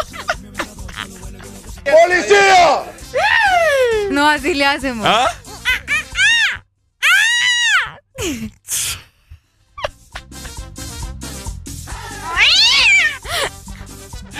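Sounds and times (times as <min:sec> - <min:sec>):
laughter: 0:00.0 - 0:04.1, 0:05.4 - 0:06.4
speech: 0:01.8 - 0:02.9, 0:04.1 - 0:05.4, 0:08.2 - 0:08.8
angry monkey screeching: 0:05.4 - 0:08.0, 0:12.0 - 0:13.3.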